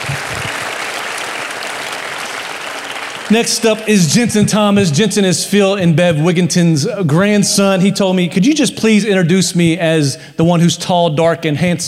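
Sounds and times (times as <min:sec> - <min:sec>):
audience applause: 0:00.0 - 0:04.0
speech: 0:03.3 - 0:11.8.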